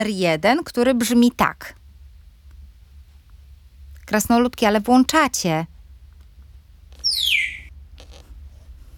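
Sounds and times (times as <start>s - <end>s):
speech: 0.0s - 1.8s, 4.1s - 5.7s, 7.1s - 7.4s
faint low hum: 0.0s - 8.9s
small bird giving a high downward-gliding whistle: 7.0s - 7.7s.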